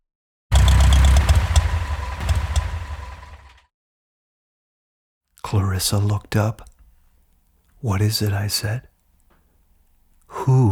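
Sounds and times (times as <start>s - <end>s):
deep heavy massive engine rumbling at idle: 0.5s - 3.6s
speech: 5.4s - 6.7s, 7.8s - 8.9s, 10.4s - 10.7s.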